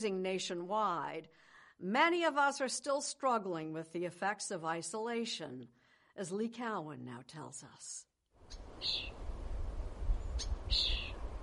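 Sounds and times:
speech: 0.0 - 9.2, 10.4 - 11.1
baby birds chirping in a nest: 10.4 - 11.2.

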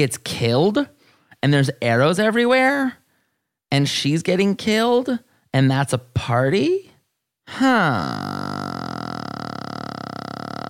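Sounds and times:
speech: 0.0 - 3.0, 3.7 - 6.9, 7.5 - 8.4
long burp: 7.6 - 10.6.

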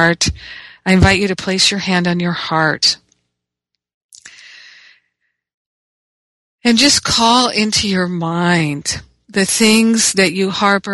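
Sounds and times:
speech: 0.0 - 3.0, 6.6 - 10.9
breath taken in and let out during guided meditation: 4.2 - 5.2.

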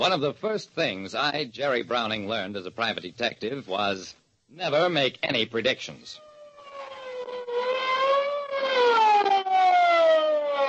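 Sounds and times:
speech: 0.0 - 6.3
big police car siren wailing: 6.2 - 10.6.

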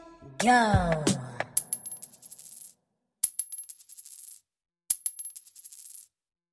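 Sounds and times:
speech: 0.4 - 1.2
coin dropped onto a hard surface: 1.6 - 6.1.

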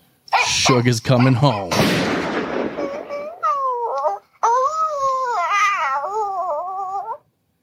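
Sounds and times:
dog whimpering in a Flash animation: 0.3 - 1.7, 2.7 - 7.2
speech: 0.7 - 2.0.

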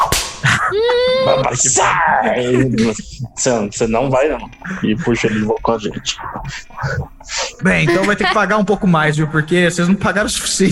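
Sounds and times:
whip crack: 0.0 - 0.5
busy noisy sounds: 0.0 - 10.7
laughter: 0.4 - 8.9
speech: 0.7 - 10.7.

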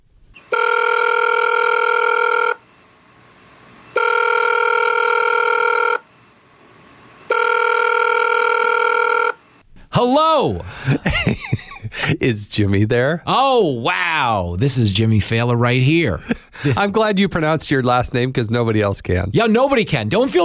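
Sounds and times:
outgoing phone call electronic ringing before pickup: 0.5 - 2.6, 3.9 - 6.1, 7.3 - 9.4
speech: 10.0 - 11.4, 12.0 - 20.4
laughter: 10.6 - 12.2, 16.1 - 16.9.

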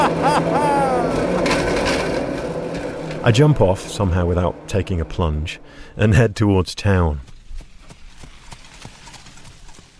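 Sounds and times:
laughter: 0.0 - 1.5
horse-drawn cart wheels rumbling: 0.0 - 5.8, 6.8 - 9.9
speech: 3.2 - 7.3
horse hooves clip-clopping on a hard road: 7.1 - 9.9.

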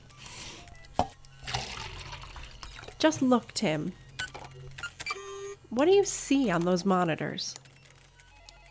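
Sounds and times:
coffee pouring into a cup: 1.4 - 3.0
speech: 3.0 - 4.0, 5.7 - 7.6.

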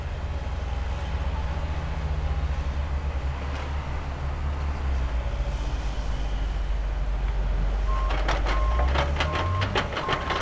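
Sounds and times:
heavy engine rumbling in a construction zone: 0.0 - 10.3
bright reversing beeps: 7.9 - 10.3
sharp clanking knocks: 8.1 - 10.3.

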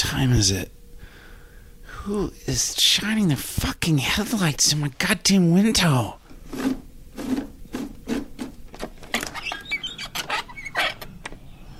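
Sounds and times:
speech: 0.0 - 0.8, 2.0 - 6.8
hissy night background: 0.0 - 11.7
birds chirping at night: 9.1 - 11.7.

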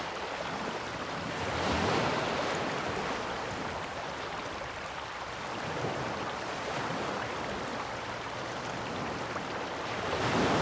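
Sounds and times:
waves: 0.0 - 10.6.

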